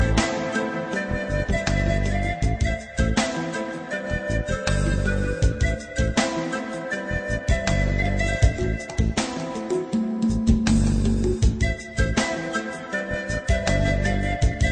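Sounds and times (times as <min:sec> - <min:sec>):
flute from Peru: 0:00.0 - 0:14.7.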